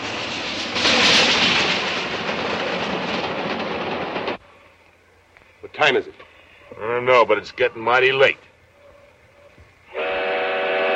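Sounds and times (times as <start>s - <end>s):
steam train powering across the countryside: 0.0s - 5.3s, 9.9s - 10.9s
speech: 5.8s - 8.5s.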